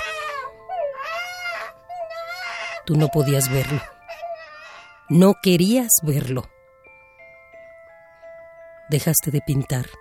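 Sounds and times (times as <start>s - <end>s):
baby crying and wailing: 0.0s - 5.2s
speech: 2.9s - 4.0s, 5.1s - 6.5s, 8.9s - 9.9s.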